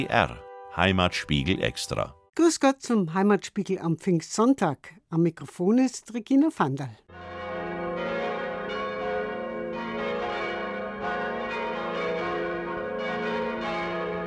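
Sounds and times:
speech: 0.0 - 7.1
heavy church bells pealing from a tower: 7.1 - 14.2.

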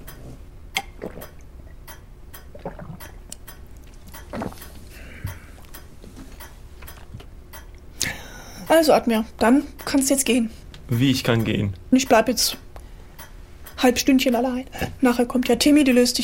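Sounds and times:
person sipping water: 0.1 - 1.5, 2.4 - 7.9
small wet mouth clicks: 0.8 - 8.2
speech: 1.0 - 1.4, 8.7 - 12.6, 13.8 - 16.2.

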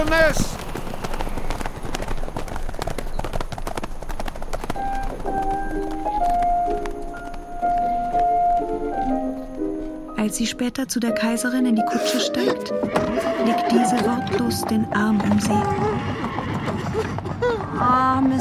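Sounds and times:
speech: 0.0 - 0.6, 10.2 - 16.4, 17.9 - 18.3
horse hooves galloping: 0.0 - 10.0, 12.7 - 18.3
sustained musical tones: 4.8 - 15.9.

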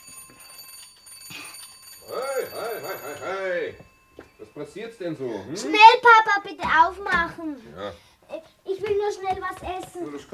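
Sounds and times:
doorbell ringing insistently: 0.0 - 6.0
speech: 4.6 - 8.1, 8.9 - 10.3.

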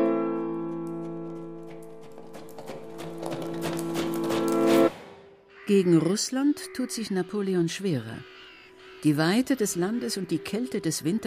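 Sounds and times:
horse hooves of a cavalry guard clattering: 0.0 - 5.4
speech: 5.7 - 8.3, 9.0 - 11.2.

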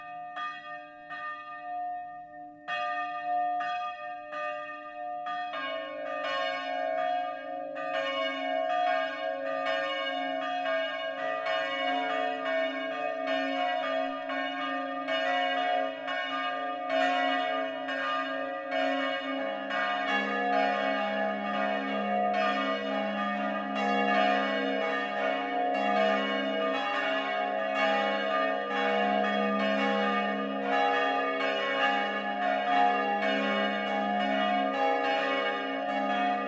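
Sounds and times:
four church bells ringing the noon peal from a church tower: 0.0 - 36.4.

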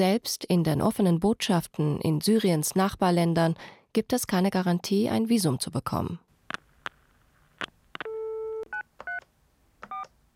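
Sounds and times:
speech: 0.0 - 6.2
telephone keypad tones dialing a smuggler: 8.0 - 9.2, 9.8 - 10.1.

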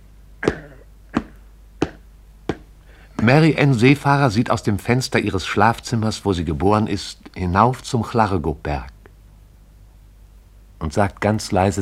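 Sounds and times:
hammer tapping on a high-heeled shoe: 1.2 - 3.3
speech: 3.2 - 9.0, 10.8 - 11.7.

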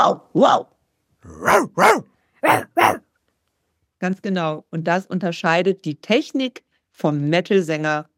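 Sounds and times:
speech: 0.0 - 3.0, 4.0 - 8.1
person imitating a barking dog: 1.3 - 3.0.

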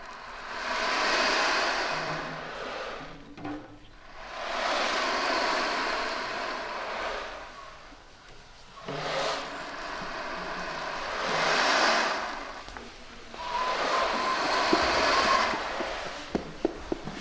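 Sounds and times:
ocean drum filled with small balls tilted back and forth: 0.0 - 3.0, 4.0 - 7.8, 8.8 - 17.2.

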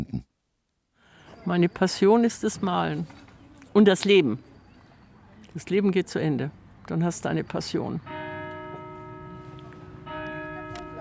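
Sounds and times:
speech: 1.5 - 4.5, 5.6 - 8.2
church bells ringing: 7.1 - 10.9.

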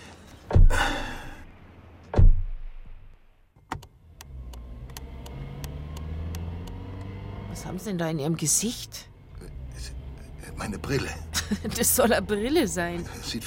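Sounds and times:
car engine starting and rumbling as the car drives off: 0.0 - 13.4
car door shutting: 0.4 - 1.0, 2.1 - 2.6
speech: 7.6 - 9.1, 10.6 - 13.4.

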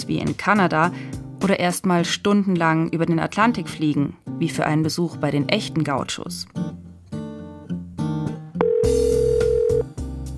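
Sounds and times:
speech: 0.0 - 6.8
loud backing music with shifting tones: 0.0 - 10.3
flat electronic tone like a telephone dial tone: 8.6 - 9.9.

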